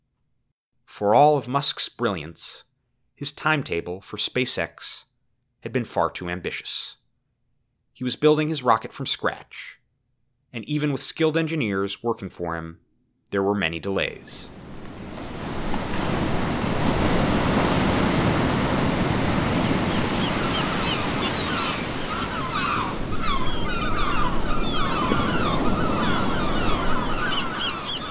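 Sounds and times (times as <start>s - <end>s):
speech: 1.0s - 7.0s, 8.0s - 9.8s, 10.5s - 14.6s
ocean waves breaking on an island shore: 14.3s - 28.0s
birds chirping: 17.7s - 28.0s.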